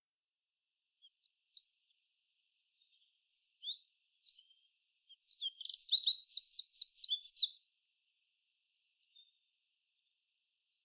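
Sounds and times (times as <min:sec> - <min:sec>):
Eurasian wren Troglodytes troglodytes singing: 0:01.0 - 0:01.9, 0:02.8 - 0:07.6.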